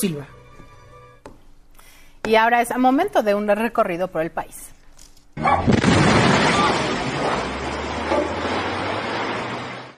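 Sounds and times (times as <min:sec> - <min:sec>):
speech: 0:00.0 - 0:00.4, 0:02.2 - 0:04.7
gas tanker trucks exploding at gas plant: 0:05.4 - 0:09.9.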